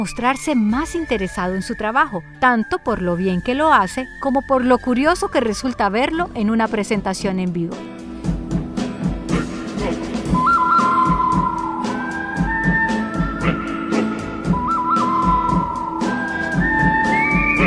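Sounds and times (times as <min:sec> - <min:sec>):
person whistling a clear sustained melody with sliding notes: 0:00.0 - 0:05.2, 0:09.3 - 0:17.6
speech: 0:00.0 - 0:08.0
loud backing band with a steady driving percussive beat: 0:08.1 - 0:17.6.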